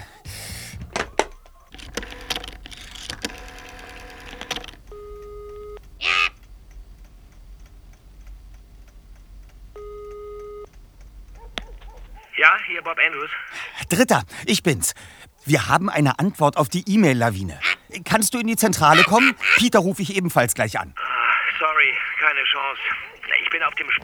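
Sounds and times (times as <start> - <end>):
laughter: 0.0 - 24.0
telephone dialing clicks and tones: 0.0 - 24.0
telephone electronic ring tone: 1.8 - 6.3, 9.8 - 10.7
speech: 12.5 - 21.0, 22.6 - 24.0.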